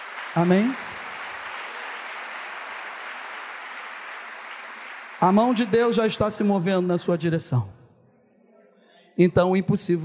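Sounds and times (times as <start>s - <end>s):
audience applauding: 0.0s - 6.6s
speech: 0.4s - 0.9s, 5.2s - 7.8s, 9.2s - 10.0s.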